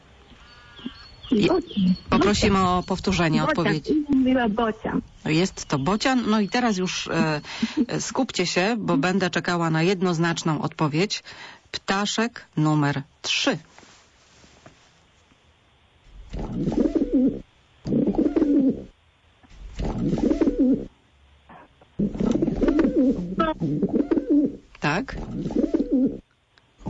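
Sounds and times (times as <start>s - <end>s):
pigeon cooing: 0.7s - 4.0s, 16.3s - 18.9s, 19.8s - 20.9s, 21.5s - 24.6s, 25.2s - 26.2s
speech: 1.3s - 13.8s, 23.4s - 24.0s, 24.8s - 26.2s.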